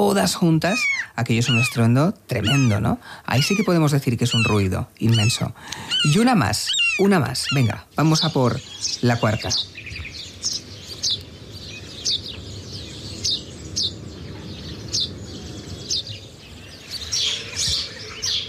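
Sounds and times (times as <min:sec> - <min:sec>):
speech: 0:00.0 - 0:09.7
house sparrow chirping: 0:00.0 - 0:18.4.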